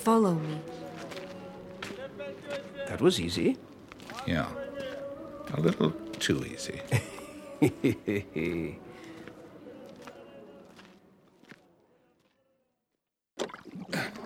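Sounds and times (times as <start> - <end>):
speech: 0.0 - 0.8, 2.2 - 4.6, 5.5 - 8.9
laughter: 6.7 - 9.2
oars dipping and splashing in water as a boat is rowed: 13.4 - 14.2.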